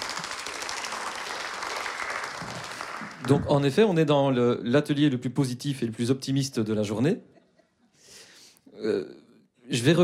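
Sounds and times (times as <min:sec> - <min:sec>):
workshop audience applauding a speaker: 0:00.0 - 0:04.0
speech: 0:03.2 - 0:07.3, 0:08.8 - 0:10.0.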